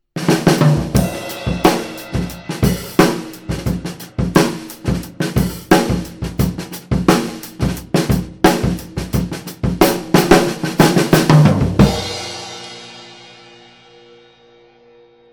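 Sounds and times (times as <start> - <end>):
drumline playing: 0.2 - 12.1.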